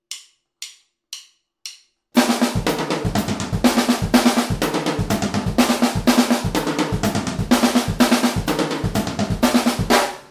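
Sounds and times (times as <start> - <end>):
all-purpose drum break played by a drummer: 2.2 - 10.3.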